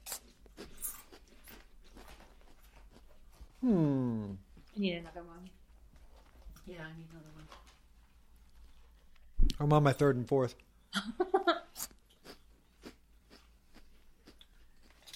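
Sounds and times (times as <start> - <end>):
crunchy snack being bitten and chewed: 0.0 - 3.1, 11.8 - 15.1
speech: 3.6 - 5.6, 6.7 - 7.6, 9.6 - 12.0.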